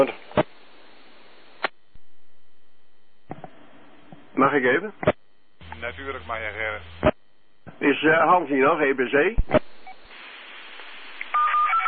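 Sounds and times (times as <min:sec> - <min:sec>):
speech: 0:00.0 - 0:00.2, 0:04.5 - 0:05.2, 0:05.8 - 0:07.1, 0:07.8 - 0:09.6
steady hiss: 0:00.0 - 0:11.8
telephone keypad dual-tone dialing beeps: 0:11.3 - 0:11.8.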